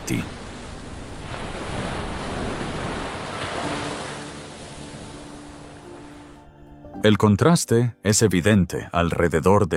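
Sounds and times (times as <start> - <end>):
wind buffeting the microphone: 0.0 - 3.8
large Atlantic Ocean waves crashing onto the north beach at Nazaré: 0.0 - 7.2
speech: 0.1 - 0.4, 7.0 - 9.7.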